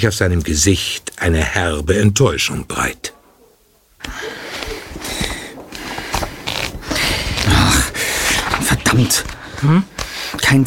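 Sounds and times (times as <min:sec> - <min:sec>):
speech: 0:00.0 - 0:03.2, 0:08.9 - 0:10.6
book pages riffled quickly through fingers in a public reading room: 0:04.3 - 0:10.5.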